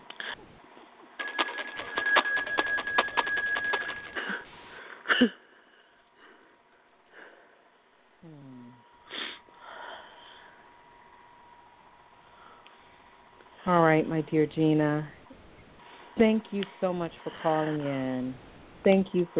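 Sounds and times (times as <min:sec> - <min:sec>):
bell ringing rapidly over a thin phone-like line: 0:01.2 - 0:04.4
speech: 0:05.2 - 0:05.4, 0:13.7 - 0:15.2, 0:16.2 - 0:19.3.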